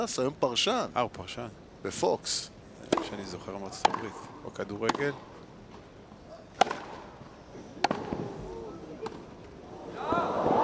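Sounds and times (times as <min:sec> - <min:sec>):
speech: 0:00.0 - 0:05.3
tennis ball impacts from a drop shot in a tennis match: 0:02.8 - 0:04.2, 0:04.8 - 0:05.2, 0:06.6 - 0:07.1, 0:07.8 - 0:08.4
crowd noise: 0:07.4 - 0:10.6.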